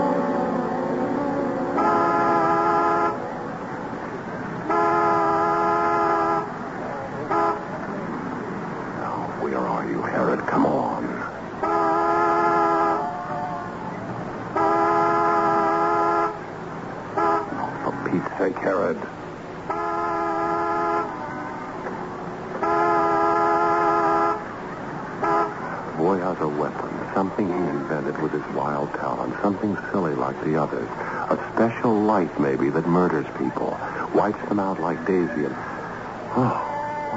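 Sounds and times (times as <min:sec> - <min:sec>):
indistinct voices: 0:00.0 - 0:05.3, 0:06.4 - 0:11.7, 0:12.5 - 0:14.6, 0:17.4 - 0:19.2, 0:24.4 - 0:37.1
car horn honking as a reminder signal: 0:01.2 - 0:03.4, 0:04.6 - 0:08.0, 0:11.6 - 0:18.9, 0:19.6 - 0:21.2, 0:22.6 - 0:26.3.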